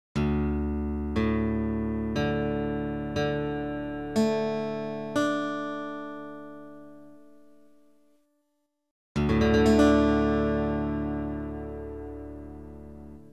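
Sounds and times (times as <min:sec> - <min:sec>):
guitar in DADDAD tuning: 0:00.2 - 0:07.7, 0:09.2 - 0:13.3.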